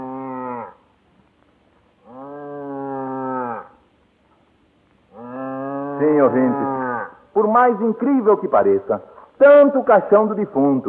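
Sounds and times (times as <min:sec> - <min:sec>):
ox mooing: 0:02.0 - 0:03.8, 0:05.1 - 0:07.3
speech: 0:06.0 - 0:06.8, 0:07.4 - 0:10.8.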